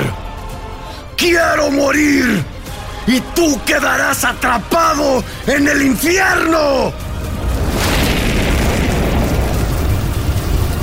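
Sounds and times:
speech: 0:01.2 - 0:02.5, 0:03.1 - 0:07.0
roaring burst of fire, a wall of flame rising: 0:07.0 - 0:10.8.

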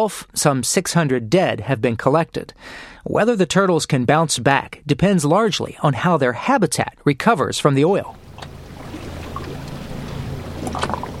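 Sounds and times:
speech: 0:00.0 - 0:08.5
water splashing and sloshing against a boat hull: 0:08.0 - 0:11.1
boat motor droning near the mouth of the Mississippi: 0:08.1 - 0:11.1.

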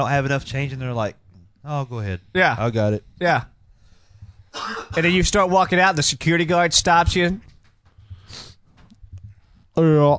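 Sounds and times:
speech: 0:00.0 - 0:03.5, 0:04.5 - 0:07.5, 0:09.8 - 0:10.1
harsh breathy cough: 0:04.5 - 0:05.0
snuffling breaths: 0:07.9 - 0:09.7.

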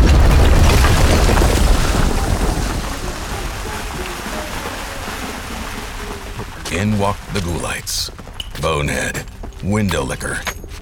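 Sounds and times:
retail store garden center exploding in a loud rumbling roar: 0:00.0 - 0:04.9
speech: 0:07.0 - 0:10.6.

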